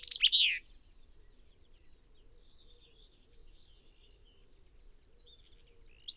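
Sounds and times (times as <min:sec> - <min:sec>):
Common chaffinch song: 0:00.0 - 0:00.6.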